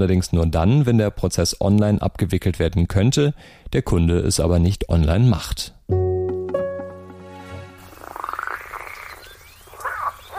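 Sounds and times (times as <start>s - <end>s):
speech: 0.0s - 6.0s
frogs croaking in a rapid pulsing chorus at Lake Titicaca in South America: 7.9s - 10.3s.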